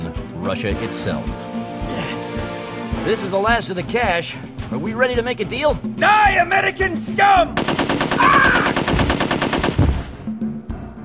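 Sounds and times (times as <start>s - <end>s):
speech: 0.4s - 1.5s, 3.0s - 8.7s
machine gun fire: 7.6s - 10.1s.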